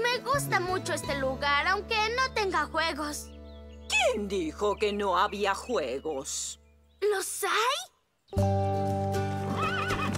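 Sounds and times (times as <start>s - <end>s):
speech: 0.1s - 3.4s, 3.9s - 8.5s
horse hooves clopping: 9.0s - 10.1s
horse pulling a carriage whinnying: 9.5s - 10.1s.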